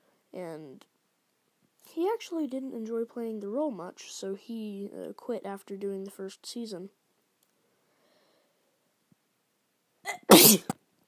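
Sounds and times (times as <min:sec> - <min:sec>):
speech: 0:00.4 - 0:01.0, 0:02.0 - 0:07.0, 0:10.2 - 0:10.7
person sneezing: 0:10.1 - 0:10.8.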